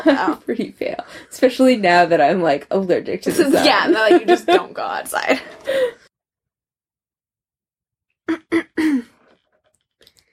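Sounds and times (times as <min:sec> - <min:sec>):
speech: 0:00.0 - 0:06.0
person clearing throat: 0:08.3 - 0:09.2.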